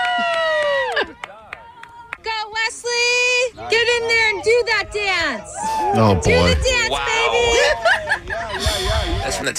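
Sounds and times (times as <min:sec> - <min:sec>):
scattered crowd noise at a youth flag football game: 0:00.2 - 0:09.5
speech: 0:04.8 - 0:07.9
spectator yelling on the sidelines at a youth flag football game: 0:05.7 - 0:07.5
laughter: 0:07.1 - 0:09.5.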